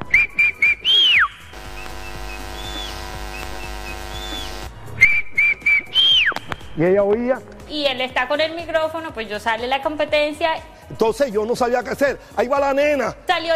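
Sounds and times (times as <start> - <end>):
person whistling a tune: 0.0 - 1.5, 4.2 - 6.8
steady droning background: 1.2 - 4.8
speech: 6.8 - 13.5.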